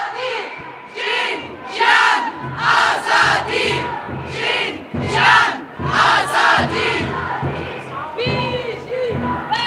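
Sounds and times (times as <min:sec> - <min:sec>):
crowd chanting slogans at a feminist demonstration: 0:00.0 - 0:09.6.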